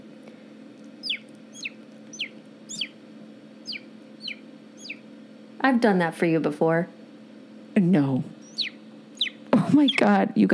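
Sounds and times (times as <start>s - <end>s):
low hum: 0.0s - 10.5s
voice imitating a small bird tweeting: 1.0s - 3.0s, 3.6s - 5.0s, 8.2s - 10.2s
speech: 5.6s - 7.0s, 7.8s - 8.3s, 9.7s - 10.5s.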